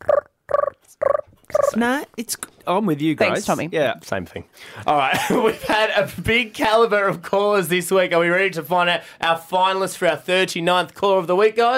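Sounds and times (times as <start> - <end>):
human voice imitating pigeon coos: 0.0 - 1.8
speech: 1.8 - 11.7.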